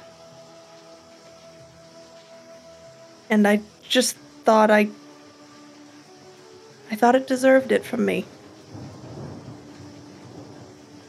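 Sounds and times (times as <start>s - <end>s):
faint rain hiss: 0.0s - 11.0s
speech: 3.3s - 5.0s, 7.0s - 8.4s
low rolling thunder: 7.0s - 11.0s.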